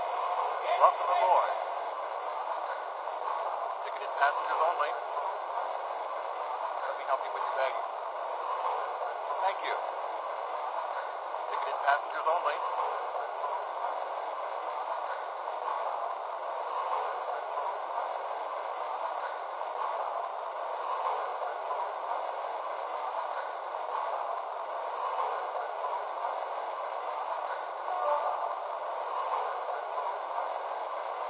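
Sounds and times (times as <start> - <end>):
passenger train departing station on track one: 0.0 - 31.2
speech: 0.8 - 1.7, 4.2 - 5.1, 7.1 - 7.9, 9.4 - 10.0, 11.9 - 12.8.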